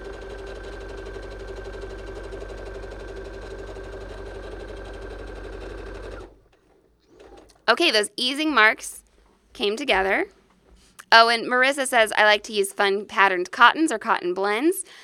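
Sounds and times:
sewing machine stitching the inseam of jeans: 0.0 - 8.0
speech: 7.7 - 9.0, 9.6 - 10.4, 11.1 - 15.0.

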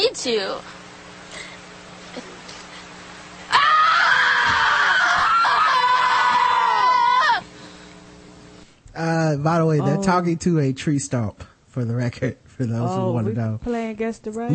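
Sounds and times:
speech: 0.0 - 0.8, 9.0 - 14.5
people screaming over a tree stump: 3.5 - 7.5
people wailing over a tree stump: 3.5 - 7.5.

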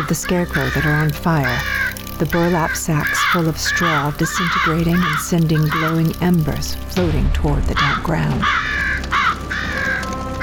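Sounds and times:
crow cawing: 0.0 - 6.9, 7.7 - 10.4
speech: 0.1 - 8.8.

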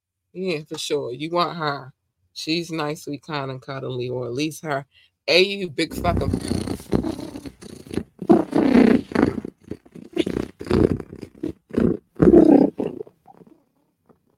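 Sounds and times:
speech: 0.3 - 6.6
big cats purring deeply: 5.9 - 13.6.

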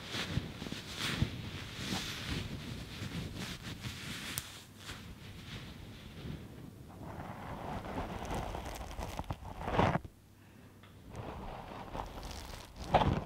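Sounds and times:
dense hair brushing with rapid scratchy strokes: 0.1 - 5.2, 7.5 - 10.1, 11.1 - 13.2.

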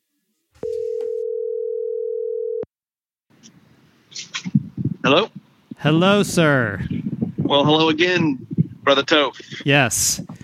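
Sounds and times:
telephone dial tone of an outgoing call: 0.6 - 2.7
speech: 5.0 - 10.3.

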